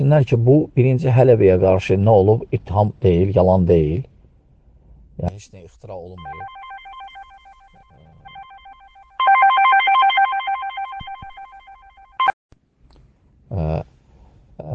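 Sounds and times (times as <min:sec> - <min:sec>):
speech: 0:00.0 - 0:04.1, 0:05.2 - 0:06.6, 0:13.5 - 0:13.9
telephone ringing with an electronic warbling tone: 0:06.2 - 0:12.4.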